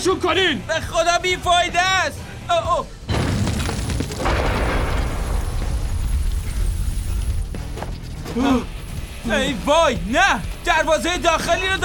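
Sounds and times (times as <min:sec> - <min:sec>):
speech: 0:00.0 - 0:03.0, 0:08.4 - 0:11.8
cannons firing in a heavy barrage: 0:03.1 - 0:07.5
explosions and rumbling impacts: 0:03.1 - 0:07.8.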